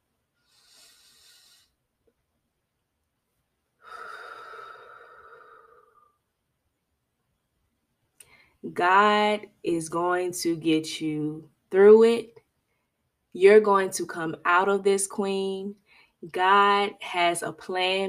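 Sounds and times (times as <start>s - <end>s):
deep breathing in and out: 0.4s - 1.9s, 3.8s - 6.2s
speech: 8.6s - 12.4s, 13.4s - 18.0s.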